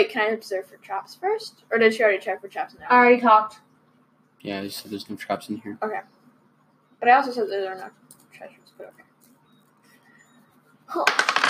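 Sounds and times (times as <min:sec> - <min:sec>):
speech: 0:00.0 - 0:03.6, 0:04.4 - 0:06.2, 0:07.0 - 0:09.1, 0:10.9 - 0:11.4
dice clattering on a hard surface during a tabletop role-playing game: 0:10.9 - 0:11.4.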